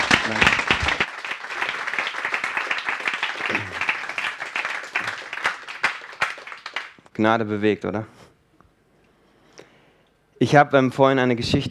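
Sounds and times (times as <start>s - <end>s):
crowd applauding with many hands clapping: 0.0s - 7.0s
speech: 0.3s - 0.6s, 7.2s - 8.2s, 10.4s - 11.6s.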